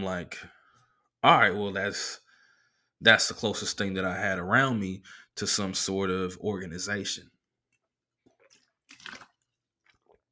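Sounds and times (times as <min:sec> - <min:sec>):
speech: 0:00.0 - 0:00.6, 0:01.2 - 0:02.2, 0:03.0 - 0:07.4
person sipping a drink of water: 0:08.2 - 0:10.2.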